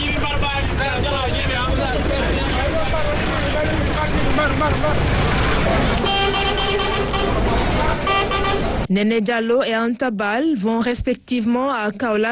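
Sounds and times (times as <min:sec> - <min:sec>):
engines rumbling at a bus station: 0:00.0 - 0:09.8
car horns honking at a bus station: 0:06.0 - 0:08.9
speech: 0:08.9 - 0:12.2.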